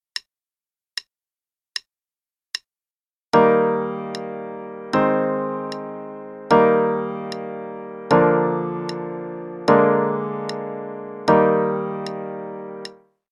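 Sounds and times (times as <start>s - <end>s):
E-flat major chord progression with legato pedal: 3.4s - 13.0s.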